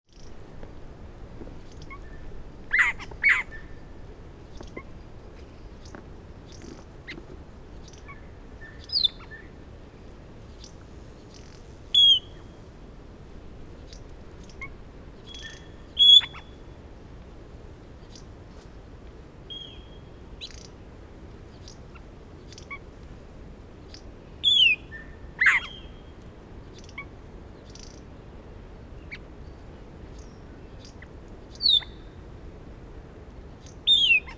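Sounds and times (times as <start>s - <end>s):
Sphecotheres vieilloti Australasian figbird call: 1.6s - 3.9s, 7.8s - 9.5s, 10.6s - 12.6s, 13.9s - 16.6s, 24.4s - 26.0s, 30.2s - 32.1s, 33.6s - 34.3s.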